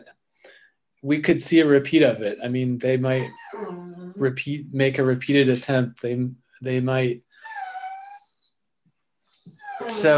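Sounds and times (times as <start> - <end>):
speech: 1.0 - 7.3, 9.9 - 10.1
dog whimpering to go outside: 3.1 - 4.3, 7.4 - 8.6, 9.2 - 10.1.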